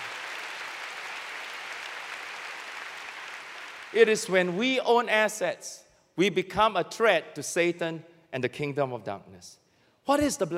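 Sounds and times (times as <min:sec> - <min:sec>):
audience clapping for the Lord: 0:00.0 - 0:04.8
speech: 0:03.9 - 0:10.5.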